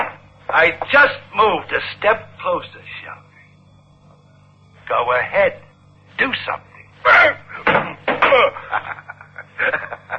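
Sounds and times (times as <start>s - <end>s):
speech: 0.5s - 3.3s, 4.9s - 5.6s, 6.2s - 7.4s, 8.3s - 9.0s
thrown gun striking a door: 7.6s - 8.4s
laughter: 8.2s - 10.1s.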